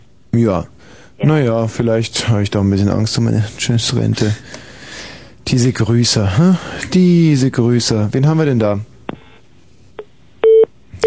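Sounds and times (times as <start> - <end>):
speech: 0.4 - 4.6, 5.5 - 8.9
electronic telephone system tones: 10.4 - 11.0.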